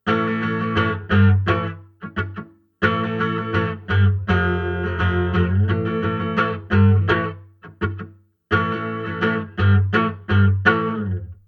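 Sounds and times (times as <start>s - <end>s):
electric guitar on bridge pickup: 0.0s - 11.4s.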